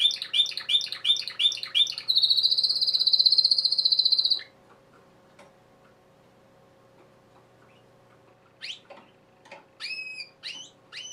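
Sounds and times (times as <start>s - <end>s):
male Belgian canary singing: 0.0s - 4.6s, 7.7s - 11.1s.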